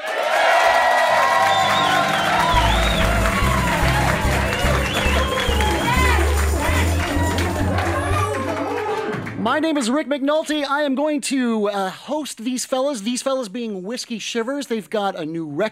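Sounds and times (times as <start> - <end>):
live studio audience of about 80 people cheering: 0.0 - 9.4
studio audience clapping: 0.0 - 9.7
studio audience shouts and whistles: 1.0 - 7.4
deep steady bass hum: 1.9 - 8.6
speech: 9.6 - 15.7.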